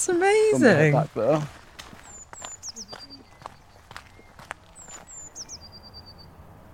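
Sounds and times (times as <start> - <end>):
speech: 0.0 - 1.6
birds singing outdoors: 0.0 - 6.7
steady crunching footsteps: 0.1 - 5.5.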